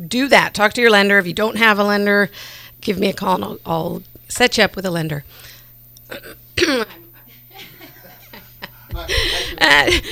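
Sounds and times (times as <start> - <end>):
speech: 0.0 - 5.5, 6.1 - 7.0, 8.9 - 10.1
person clearing throat: 6.1 - 7.0
laughter: 6.8 - 10.1.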